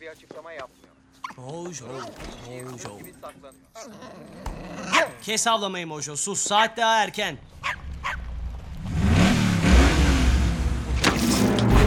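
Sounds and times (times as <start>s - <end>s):
speech: 0.0s - 7.8s
Camaro car engine revving: 7.8s - 11.8s.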